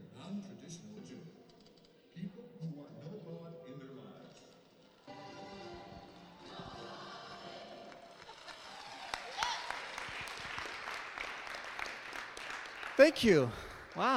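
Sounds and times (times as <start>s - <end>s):
audience clapping: 6.1s - 14.1s
speech: 13.0s - 14.1s.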